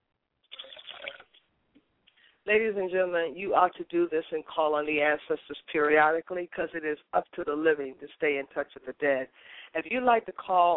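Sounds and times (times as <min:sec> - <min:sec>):
liquid poured out as a ritual libation: 0:00.4 - 0:01.5
speech: 0:02.5 - 0:10.7.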